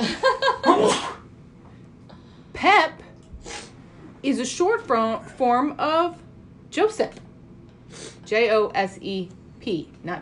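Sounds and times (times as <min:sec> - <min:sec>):
person sneezing: 0:00.7 - 0:01.3, 0:03.4 - 0:03.8
speech: 0:04.2 - 0:07.2, 0:08.3 - 0:10.2.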